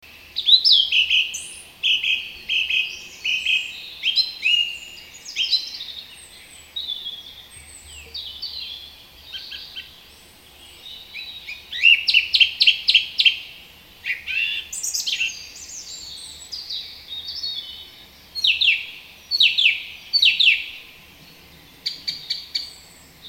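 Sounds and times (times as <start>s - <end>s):
Turdus philomelos bird in a hedge: 0.0s - 23.2s.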